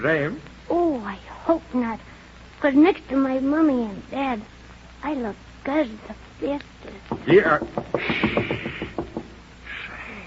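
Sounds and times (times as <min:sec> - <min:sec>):
speech: 0:00.0 - 0:08.5
knocking on a door: 0:07.1 - 0:09.4.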